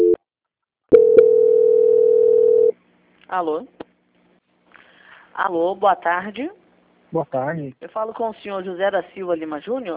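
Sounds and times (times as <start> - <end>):
steady continuous phone tone during call transfer: 0.0 - 0.2, 0.9 - 2.7
telephone beep during call transfer: 1.0 - 2.7
speech: 3.3 - 3.8, 5.4 - 9.9.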